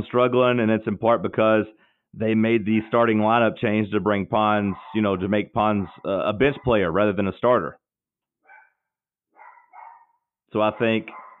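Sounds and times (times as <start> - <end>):
speech: 0.0 - 7.8, 10.5 - 11.2
dog barking: 4.6 - 7.0, 8.4 - 11.3.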